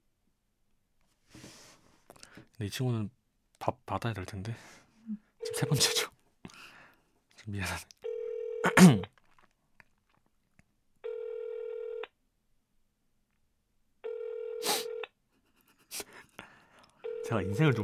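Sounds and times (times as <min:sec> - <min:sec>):
speech: 0:02.6 - 0:06.1, 0:07.4 - 0:07.9, 0:08.8 - 0:09.1, 0:17.3 - 0:17.8
telephone ringback tones: 0:05.4 - 0:06.1, 0:08.0 - 0:08.8, 0:11.0 - 0:12.0, 0:14.0 - 0:15.0, 0:17.0 - 0:17.8.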